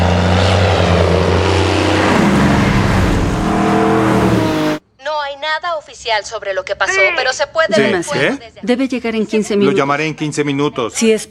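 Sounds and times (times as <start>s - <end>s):
airplane flying overhead: 0.0s - 4.8s
speech: 6.0s - 11.2s.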